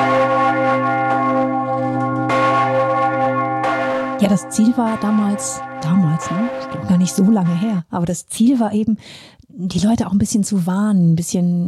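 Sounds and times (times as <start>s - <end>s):
city alarm bell in Lausanne rung in a traditional emergency rhythm: 0.0s - 7.9s
speech: 4.2s - 11.6s.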